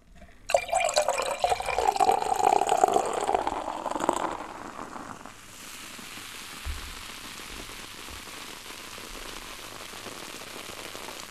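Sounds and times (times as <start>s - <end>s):
beer poured into a glass: 0.0s - 5.5s
beer carbonation bubbles fizzing: 0.0s - 11.2s.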